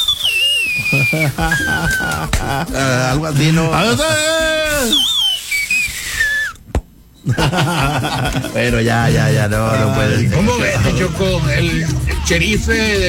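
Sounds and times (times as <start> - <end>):
person whistling sliding shrill tones like a street vendor's whistle: 0.0 - 2.3, 4.0 - 6.6
people talking and laughing: 0.6 - 5.0, 7.2 - 13.0
speech: 0.9 - 5.1, 7.2 - 13.0.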